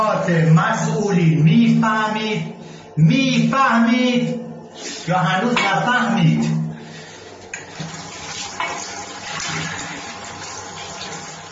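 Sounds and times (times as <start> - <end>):
speech: 0.0 - 6.6
water running from a tap: 7.6 - 11.5.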